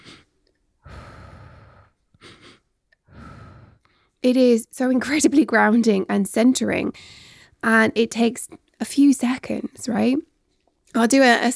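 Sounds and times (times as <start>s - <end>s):
breathing in through the nose and out through the mouth: 0.0s - 4.2s, 6.9s - 7.6s
speech: 4.2s - 10.3s, 10.9s - 11.5s.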